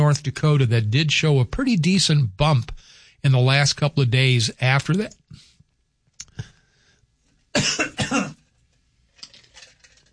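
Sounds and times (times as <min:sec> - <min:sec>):
speech: 0:00.1 - 0:05.4, 0:07.6 - 0:08.4
person clearing throat: 0:07.6 - 0:08.5.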